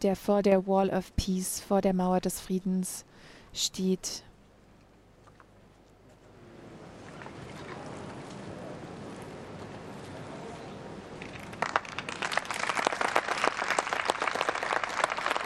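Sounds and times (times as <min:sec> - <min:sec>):
speech: 0:00.0 - 0:04.3
audience applause at a youth forum: 0:11.1 - 0:15.4.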